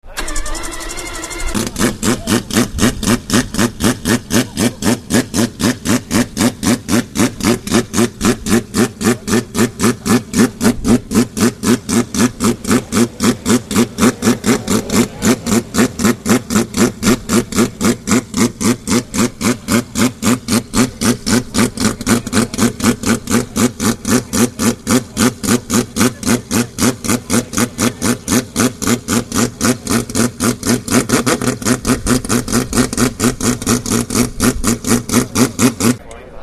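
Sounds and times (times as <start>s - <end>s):
1991 Mazda 787B race car engine: 0.0s - 36.4s.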